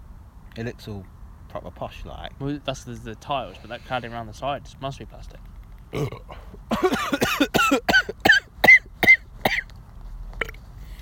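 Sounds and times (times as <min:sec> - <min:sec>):
speech: 0:00.6 - 0:07.9
loud burp: 0:05.9 - 0:06.4
brief cough: 0:05.9 - 0:09.7.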